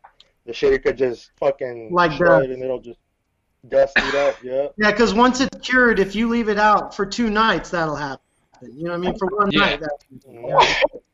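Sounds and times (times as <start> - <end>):
speech: 0.5 - 3.0, 3.6 - 11.1
sneeze: 4.0 - 4.4, 10.5 - 11.0.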